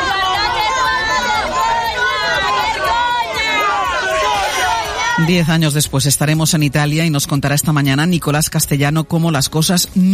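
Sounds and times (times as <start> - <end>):
large crowd booing and jeering politicians: 0.0 - 6.0
speech: 5.2 - 10.1.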